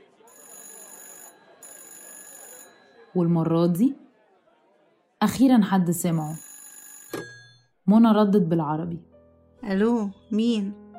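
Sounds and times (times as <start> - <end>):
telephone ringing: 0.2 - 3.8, 6.0 - 7.8
speech: 3.1 - 4.0, 5.2 - 6.5, 7.9 - 10.8.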